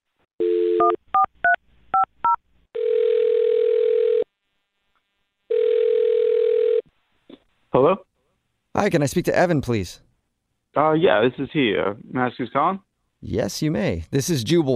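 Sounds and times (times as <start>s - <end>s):
telephone dial tone: 0.4s - 1.3s, 2.8s - 4.2s, 5.5s - 6.8s
speech: 8.8s - 10.0s, 10.8s - 14.7s.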